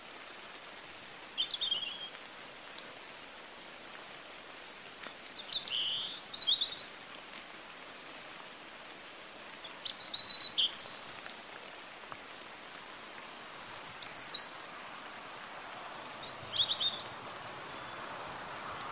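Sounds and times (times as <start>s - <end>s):
steady hiss: 0.0s - 18.9s
European robin Erithacus rubecula singing: 5.4s - 6.9s, 9.6s - 11.4s, 13.5s - 14.6s, 16.2s - 18.6s.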